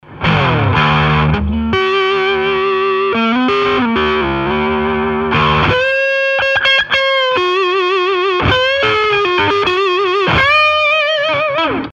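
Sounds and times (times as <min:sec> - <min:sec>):
electric guitar with neck distortion: 0:00.0 - 0:11.9.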